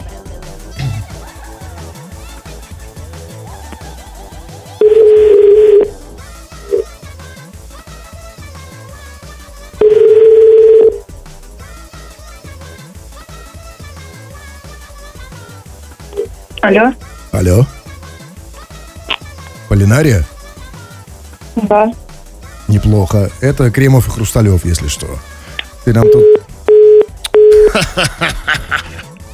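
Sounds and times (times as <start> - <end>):
laughter: 0.8 - 2.3, 27.5 - 29.2
telephone line beeps while a number is being called: 4.8 - 5.9, 9.8 - 11.0, 26.0 - 27.7
speech: 16.6 - 17.8, 19.8 - 20.3, 21.6 - 22.0, 22.7 - 26.5, 27.7 - 28.4.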